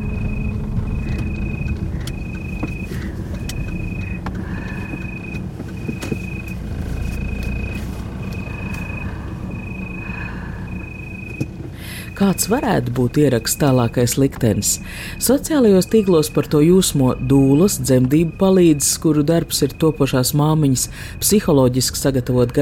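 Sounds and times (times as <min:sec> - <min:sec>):
road and engine rumble inside a moving car: 0:00.0 - 0:22.6
speech: 0:12.2 - 0:22.6.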